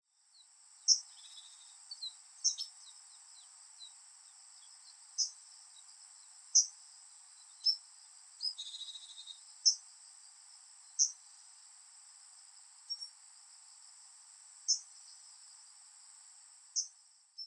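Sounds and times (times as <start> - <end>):
Arctic Warbler calling: 0.8 - 4.0, 4.6 - 5.4, 6.5 - 6.7, 7.3 - 7.8, 8.4 - 9.8, 10.9 - 11.2, 14.7 - 14.9, 16.8 - 17.4.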